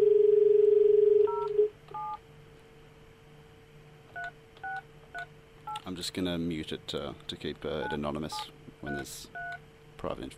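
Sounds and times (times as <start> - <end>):
telephone dial tone: 0.0 - 2.2
speech: 6.0 - 9.4, 10.0 - 10.3.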